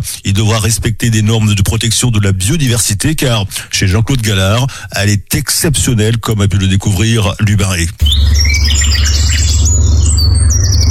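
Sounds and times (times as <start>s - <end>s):
speech: 0.0s - 8.9s
birds singing outdoors: 8.0s - 10.8s.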